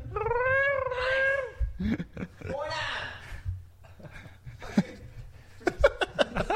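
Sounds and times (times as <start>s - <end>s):
cats yowling in a fight: 0.0s - 1.6s
laughter: 1.8s - 3.1s, 3.8s - 6.5s.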